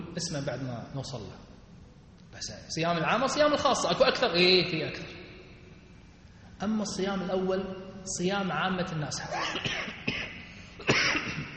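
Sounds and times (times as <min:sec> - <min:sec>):
low steady noise: 0:00.0 - 0:11.5
speech: 0:00.2 - 0:01.5, 0:02.3 - 0:05.2, 0:06.6 - 0:10.0
ill man coughing: 0:09.2 - 0:11.5.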